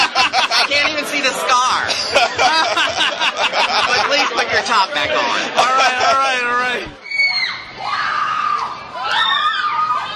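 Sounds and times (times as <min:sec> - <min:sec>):
laughter: 0:00.0 - 0:06.9
dense outdoor crowd din: 0:00.0 - 0:10.1
crowd of girls screaming: 0:07.0 - 0:10.1.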